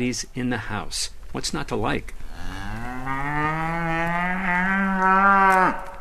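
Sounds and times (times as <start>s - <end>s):
speech: 0.0s - 2.6s
large horned cow mooing: 2.3s - 5.9s.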